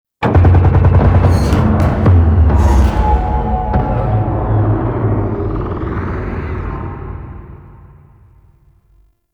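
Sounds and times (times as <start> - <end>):
hull contact impact in gameplay: 0.2 - 6.3.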